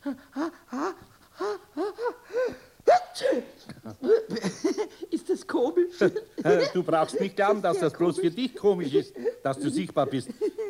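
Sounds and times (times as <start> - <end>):
short breathy gasping breaths: 0.0 - 2.8
person sneezing from dust in the nose: 0.4 - 4.4
laughter: 3.8 - 10.6
speech: 6.8 - 10.4.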